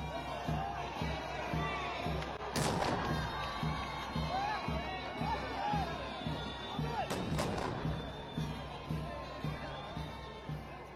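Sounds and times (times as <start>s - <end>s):
large outdoor crowd cheering and calling out: 0.0s - 10.9s
ceremonial cannons fired in salute in Mazar-i-Sharif: 2.6s - 3.2s.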